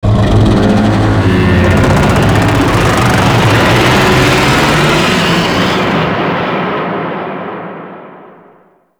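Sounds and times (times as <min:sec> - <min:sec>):
void dragon creature vocal: 0:00.0 - 0:06.3.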